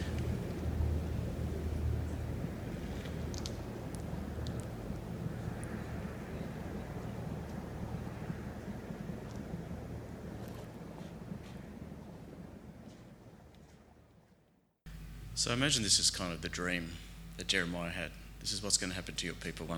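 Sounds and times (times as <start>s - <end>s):
flash flood water rushing through desert riverbed in the Negev desert: 0.0s - 13.4s
wind buffeting the microphone: 0.0s - 14.4s
speech: 15.4s - 19.7s.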